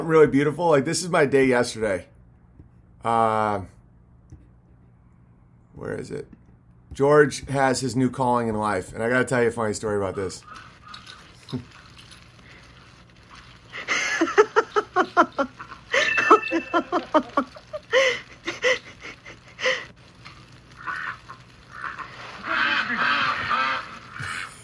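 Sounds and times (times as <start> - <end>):
speech: 0.0 - 2.1, 3.0 - 3.8, 5.8 - 10.7, 11.5 - 11.8, 16.7 - 18.1
duck giving raspy breathy honks: 10.2 - 11.3, 20.8 - 24.6
laughter: 13.7 - 19.9
duck quacking: 20.8 - 24.6.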